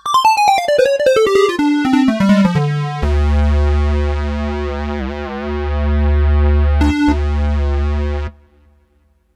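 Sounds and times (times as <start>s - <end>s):
Roland D-10 square-wave lead synth: 0.1s - 8.7s.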